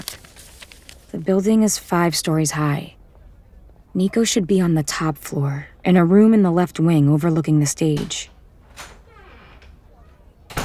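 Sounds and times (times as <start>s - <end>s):
speech: 1.1s - 3.0s, 4.0s - 8.9s
door bumping shut in a long hallway: 7.9s - 9.8s, 10.5s - 10.6s
door creaking open in a long hallway: 7.9s - 10.6s.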